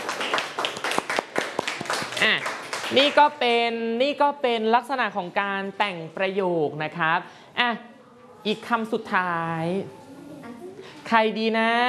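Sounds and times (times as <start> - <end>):
scattered hand claps from a small group in a classroom: 0.0 - 3.2
speech: 2.2 - 10.0, 11.1 - 11.8.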